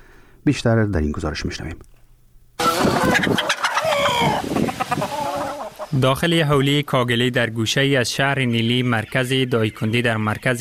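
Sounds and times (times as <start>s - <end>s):
speech: 0.4s - 1.9s, 5.9s - 10.6s
chickens clucking and squawking in a poultry farm: 2.6s - 6.4s.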